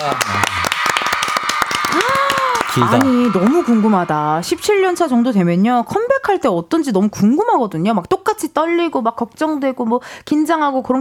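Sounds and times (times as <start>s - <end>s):
crowd applauding in studio: 0.0s - 5.4s
person calling out over applause: 2.7s - 3.3s
speech: 2.8s - 10.9s.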